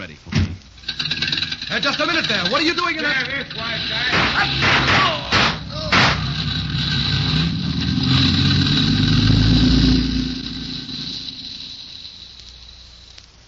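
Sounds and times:
car engine rumbling and revving in alley: 0.8s - 12.5s
speech: 1.7s - 5.3s
sharp loud bang: 4.1s - 6.4s.

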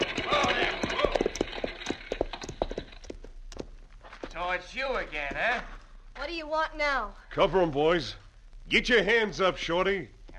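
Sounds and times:
buckboard wagon rattling as it rolls: 0.0s - 3.4s
hoofbeats of horses pulling a buckboard wagon: 0.0s - 5.7s
speech: 4.6s - 10.3s.

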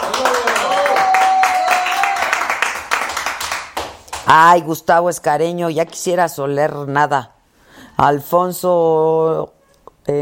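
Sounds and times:
hands clapping: 0.0s - 4.4s
speech: 4.3s - 7.4s, 8.0s - 10.1s.

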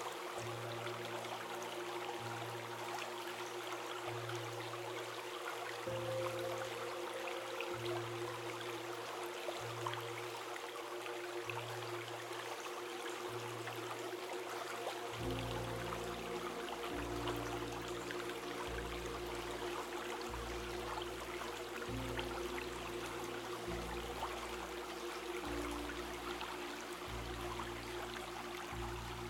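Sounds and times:
calm orchestrated music: 0.0s - 29.2s
gentle river flowing: 0.0s - 29.2s.

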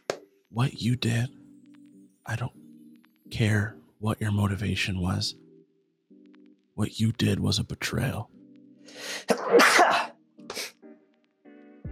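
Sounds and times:
speech: 0.5s - 1.4s, 2.3s - 2.6s, 3.3s - 5.4s, 6.8s - 10.1s
person sneezing: 9.0s - 10.8s.

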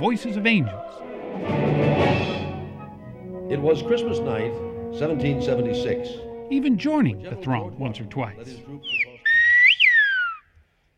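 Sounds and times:
speech: 0.0s - 2.3s, 3.5s - 9.1s
loud piercing whistle in whistled language: 8.8s - 10.9s.

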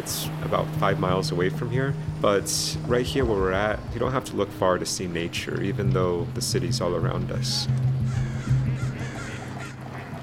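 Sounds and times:
speech: 0.0s - 8.2s
crows cawing in the East Bay: 8.0s - 10.2s.

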